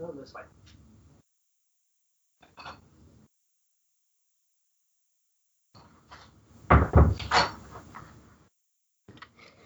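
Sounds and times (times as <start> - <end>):
wooden office door thumping and rattling as it swings and shuts: 6.7 - 7.7.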